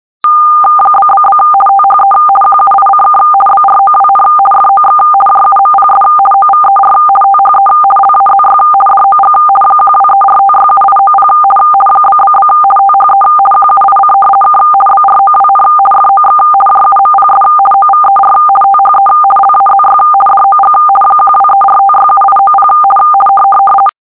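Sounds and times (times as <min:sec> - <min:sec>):
radioteletype signal 425 50: 0:00.2 - 0:23.9.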